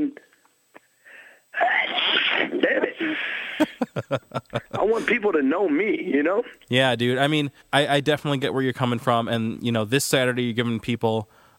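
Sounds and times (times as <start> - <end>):
person sneezing: 1.6 - 3.9
speech: 1.6 - 11.5
laughter: 2.8 - 5.1.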